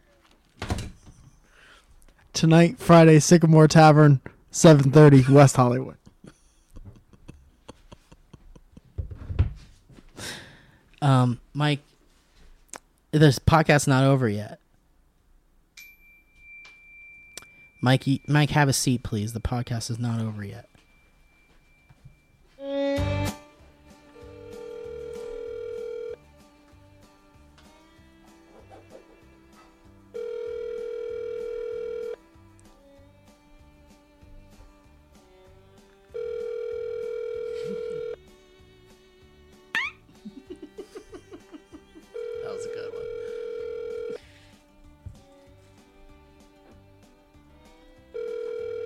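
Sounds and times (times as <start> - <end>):
faint noise: 0.0 - 48.8
speech: 2.4 - 6.0, 11.0 - 11.9, 13.1 - 14.6, 17.8 - 20.7
laughter: 6.3 - 8.9, 40.1 - 42.2
telephone ringback tone ringing unanswered: 24.2 - 26.2, 30.2 - 32.2, 36.1 - 38.2, 42.1 - 44.2, 48.2 - 48.8.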